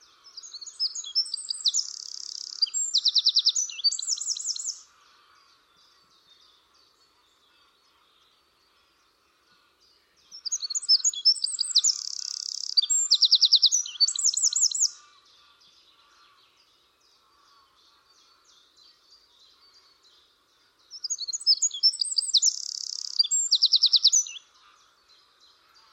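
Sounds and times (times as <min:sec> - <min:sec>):
bird calling with high chirps, buzzy notes and rapid trills: 0:00.0 - 0:05.0, 0:10.3 - 0:15.1, 0:20.9 - 0:24.6.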